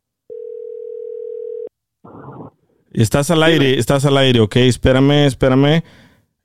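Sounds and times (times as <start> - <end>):
telephone dial tone while placing a call to Mexico: 0.3 - 2.3
speech: 2.0 - 6.1.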